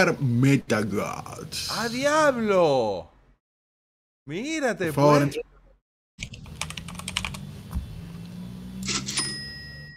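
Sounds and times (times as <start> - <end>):
speech: 0.0 - 3.1, 4.3 - 5.5
keyboard typing with rapid clicky keystrokes: 6.2 - 7.4.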